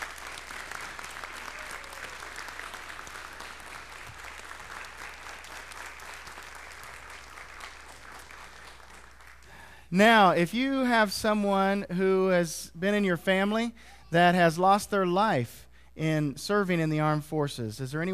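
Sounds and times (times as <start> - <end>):
sustained applause from a sizable audience: 0.0 - 9.6
speech: 9.9 - 18.1.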